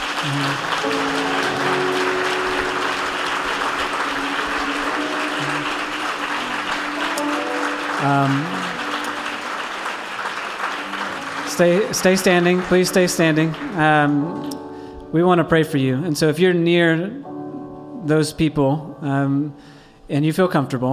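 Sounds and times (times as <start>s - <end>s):
crowd applauding: 0.0s - 14.9s
speech: 0.2s - 1.8s, 8.0s - 8.6s, 11.6s - 17.3s, 18.0s - 20.9s.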